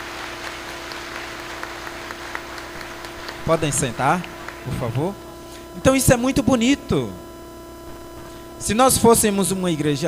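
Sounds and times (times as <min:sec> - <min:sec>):
church audience at a parish gathering applauding: 0:00.0 - 0:05.0
faint low hum: 0:00.0 - 0:10.0
speech: 0:03.4 - 0:05.2, 0:05.8 - 0:07.2, 0:08.6 - 0:10.0.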